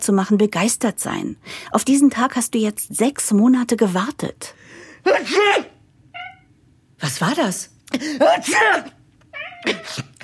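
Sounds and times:
speech: 0.0s - 5.7s, 7.0s - 9.0s, 9.6s - 10.2s
male cat meowing: 6.2s - 6.5s, 9.3s - 10.0s.

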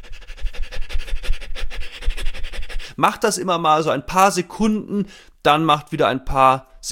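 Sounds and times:
rapid panting breaths from a breathing exercise: 0.0s - 3.0s
speech: 3.0s - 6.8s.

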